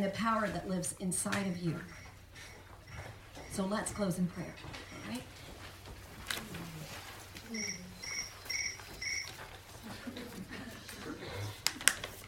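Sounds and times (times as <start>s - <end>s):
speech: 0.0s - 2.5s, 3.5s - 5.4s, 7.5s - 7.8s
low hum: 0.0s - 12.2s
crickets chirping: 7.6s - 9.3s
laughter: 9.8s - 11.5s.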